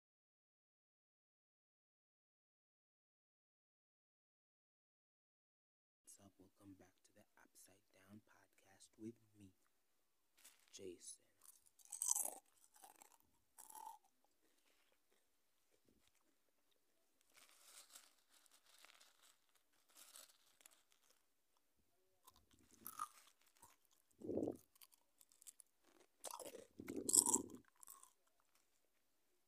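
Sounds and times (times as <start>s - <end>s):
speech: 6.2s - 9.6s, 10.8s - 11.3s
crisp packet crinkling: 10.4s - 10.8s, 11.5s - 15.0s, 17.2s - 21.3s, 22.3s - 28.8s
crunchy chewing of crisps: 10.4s - 16.3s, 17.1s - 21.3s, 22.3s - 28.8s.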